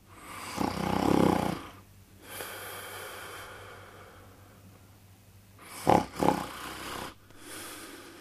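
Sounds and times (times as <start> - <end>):
person snoring with rattling snores and snorts: 0.2 - 4.1, 5.6 - 8.1.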